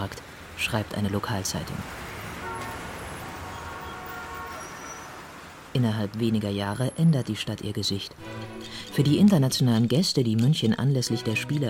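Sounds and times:
speech: 0.0 - 2.0, 5.8 - 11.6
busy street traffic in Munich: 0.0 - 11.6
car horns tooting: 2.3 - 5.4.

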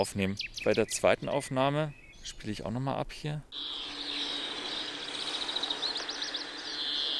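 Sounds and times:
speech: 0.0 - 3.9
noisy phone recording: 0.0 - 7.1
greenfinch calling in a phone recording: 0.4 - 2.5, 3.5 - 7.1.

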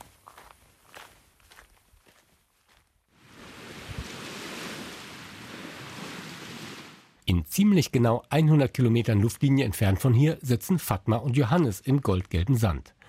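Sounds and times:
footsteps crunching along a nature trail: 0.0 - 3.1
loud continuous rush of wind or surf: 3.2 - 7.1
speech: 7.3 - 13.0.

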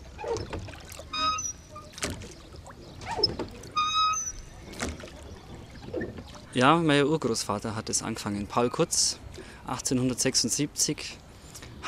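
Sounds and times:
creaking wooden squeaks of a rowing boat: 0.0 - 6.5
rowing boat oars dipping and pulling through water on a city moat: 0.0 - 7.3
speech: 6.6 - 11.2.

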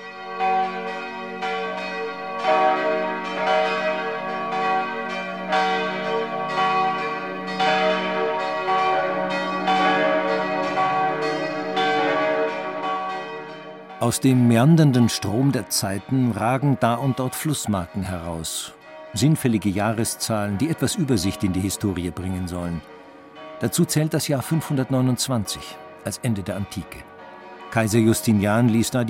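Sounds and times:
large abbey church bells pealing: 0.0 - 29.0
speech: 14.1 - 23.0, 23.6 - 27.1, 27.7 - 29.0.

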